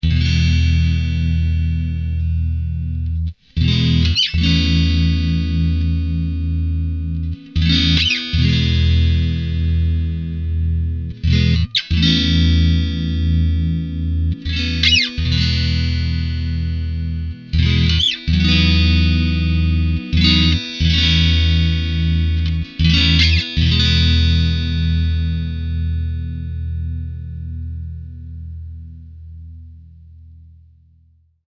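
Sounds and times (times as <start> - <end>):
clean electric guitar from the neck pickup: 0.0 - 31.0.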